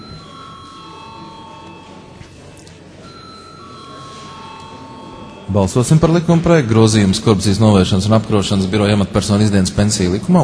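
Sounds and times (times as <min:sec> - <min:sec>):
parliament voting bell ringing: 0:00.0 - 0:06.7
speech: 0:05.5 - 0:10.4.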